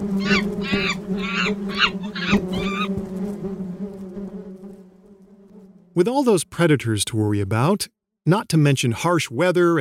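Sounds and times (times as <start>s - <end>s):
swarm of bees buzzing: 0.0s - 6.3s
harsh rasping bird calls: 0.2s - 3.0s
speech: 0.3s - 2.5s, 6.0s - 9.7s.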